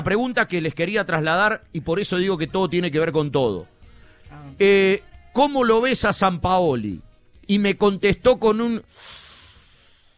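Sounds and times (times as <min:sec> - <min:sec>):
speech: 0:00.0 - 0:09.2
voice imitating an air pump inflating a tyre: 0:08.9 - 0:10.1.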